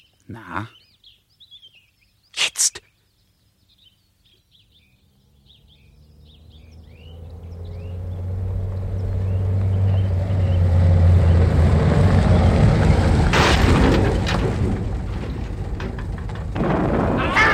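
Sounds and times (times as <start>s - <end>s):
speech: 0.3s - 0.8s
new car engine drone and rumbling roar: 5.0s - 17.5s
new car crashing into a gorge: 6.9s - 17.5s.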